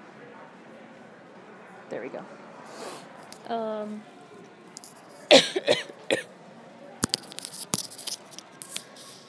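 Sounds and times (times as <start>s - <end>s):
speech: 1.9s - 2.9s, 3.5s - 4.2s
person coughing harshly: 5.3s - 6.3s.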